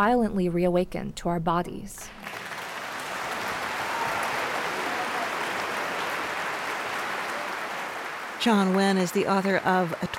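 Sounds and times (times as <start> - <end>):
speech: 0.0 - 2.2, 8.4 - 10.1
large audience applauding: 2.1 - 10.1.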